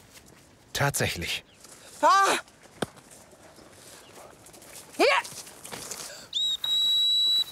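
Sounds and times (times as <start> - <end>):
faint outdoor noise: 0.0 - 7.5
speech: 0.8 - 2.5
dog whistle calling a hunting dog back: 6.4 - 7.5.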